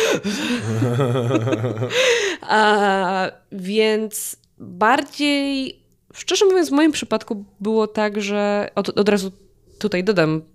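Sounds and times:
person exhaling: 0.0s - 1.0s, 1.8s - 2.5s
person imitating a sharp gasp for breath after holding it: 0.0s - 1.1s, 1.8s - 2.5s
speech: 0.2s - 10.5s
laughter: 0.6s - 2.0s.

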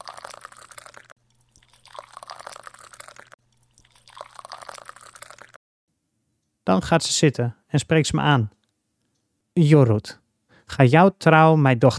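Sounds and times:
woman pouring hot water for tea into teacups: 0.0s - 5.6s
speech: 6.7s - 8.6s, 9.6s - 11.9s.

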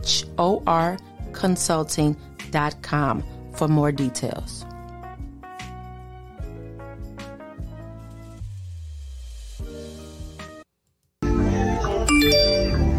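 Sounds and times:
music: 0.0s - 12.9s
speech: 0.1s - 4.7s
phone notification chime: 12.1s - 12.9s.

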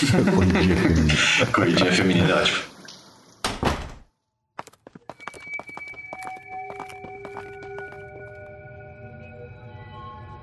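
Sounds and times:
laughter: 0.0s - 1.8s
speech: 0.0s - 2.7s
door thudding shut: 3.4s - 4.1s.

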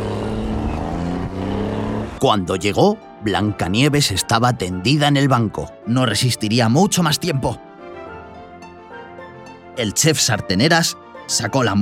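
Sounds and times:
car driving off: 0.0s - 2.2s
speech: 2.2s - 7.7s, 9.8s - 11.8s.

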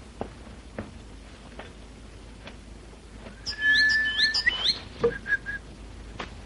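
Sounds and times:
canary trilling and chirping softly: 3.4s - 4.9s.

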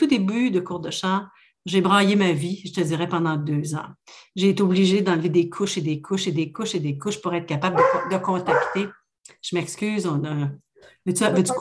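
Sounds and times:
speech: 0.0s - 11.5s
dog barking: 7.7s - 9.0s.

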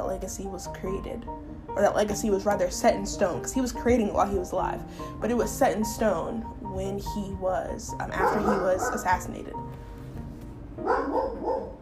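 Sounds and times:
speech: 0.0s - 9.8s
dog barking: 8.2s - 9.3s, 10.8s - 11.7s.

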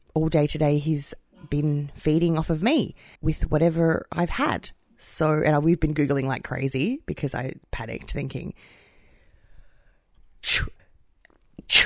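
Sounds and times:
speech: 0.2s - 8.8s, 10.4s - 10.8s, 11.6s - 11.8s
quiet breathing: 3.0s - 3.2s, 8.5s - 10.2s
person sneezing: 10.4s - 10.8s, 11.6s - 11.8s.

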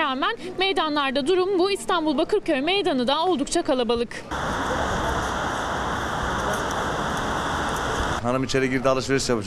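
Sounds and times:
speech: 0.1s - 4.9s, 8.2s - 9.4s
blustery wind rushing over rain in cold weather in Istanbul: 4.3s - 8.2s
steady outdoor rain in cold weather in Istanbul: 4.3s - 8.2s.

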